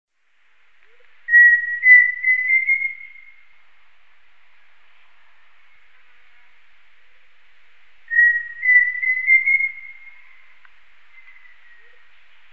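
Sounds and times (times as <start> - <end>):
Pheasant cuckoo Dromococcyx phasianellus giving whistled phrases: 0.9 - 3.5, 8.1 - 12.2.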